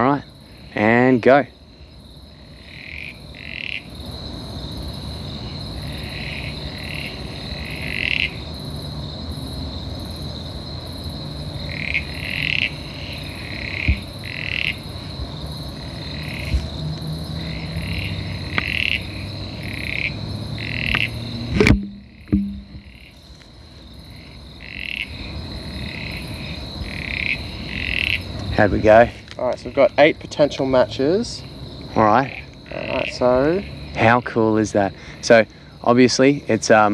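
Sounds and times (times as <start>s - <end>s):
speech: 0.0s - 1.6s, 28.6s - 36.9s
chorus of frogs croaking from thick grass outdoors: 0.0s - 36.9s
continuous high buzzing hum: 21.4s - 23.0s.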